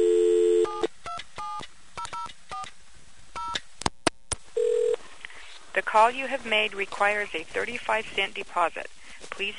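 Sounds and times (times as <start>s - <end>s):
payphone line humming with a steady tone: 0.0s - 0.9s, 4.6s - 5.0s
speech: 6.0s - 9.5s.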